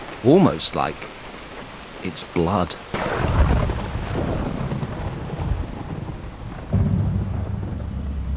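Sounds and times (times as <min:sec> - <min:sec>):
heavy rain pouring over a building site: 0:00.0 - 0:08.3
speech: 0:00.2 - 0:01.2, 0:02.0 - 0:03.3
deep thunder rumbling: 0:02.9 - 0:08.3.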